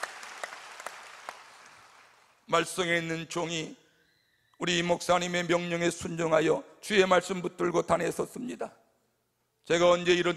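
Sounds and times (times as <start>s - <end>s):
scattered clapping from a church congregation: 0.0s - 2.4s
hiss: 0.0s - 10.3s
speech: 2.5s - 3.8s, 4.6s - 8.8s, 9.7s - 10.3s.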